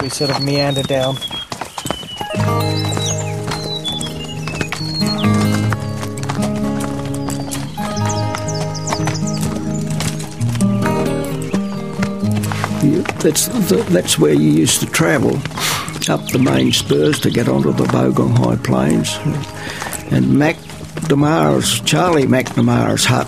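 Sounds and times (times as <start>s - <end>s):
speech: 0.0s - 1.5s, 13.2s - 23.2s
pack train horses' hooves clip-clopping down a packhorse trail on the Bogong High Plains: 0.0s - 23.2s.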